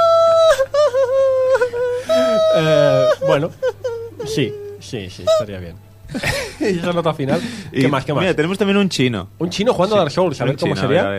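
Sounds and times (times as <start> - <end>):
man wailing and crying after losing: 0.0 - 7.4
speech: 3.3 - 11.1.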